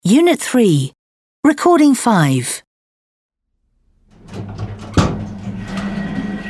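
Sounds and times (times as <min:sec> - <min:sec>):
speech: 0:00.1 - 0:02.6
lift doors sliding with a rumbling whir: 0:04.1 - 0:06.4.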